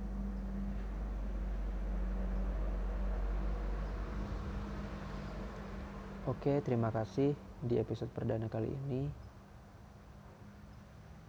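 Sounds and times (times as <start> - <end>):
car passing by outside: 0.0 - 7.6
speech: 6.3 - 9.2.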